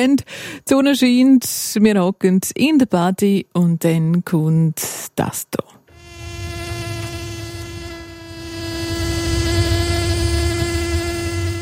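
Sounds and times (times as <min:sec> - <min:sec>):
speech: 0:00.0 - 0:05.8
bee buzzing: 0:05.9 - 0:11.6.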